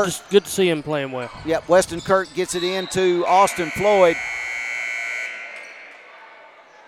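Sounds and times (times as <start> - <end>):
speech: 0.0 - 4.4
arena crowd noise: 0.0 - 6.8
basketball game buzzer ending quarter: 3.4 - 5.8.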